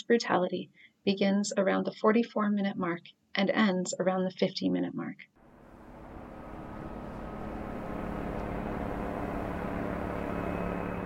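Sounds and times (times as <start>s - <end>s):
speech: 0.1s - 5.4s
police surveillance helicopter flying overhead: 5.4s - 11.0s.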